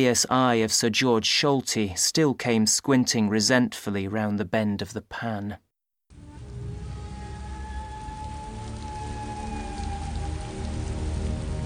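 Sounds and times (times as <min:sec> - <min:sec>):
speech: 0:00.0 - 0:05.7
heavy summer rain shower pouring down: 0:06.1 - 0:11.6.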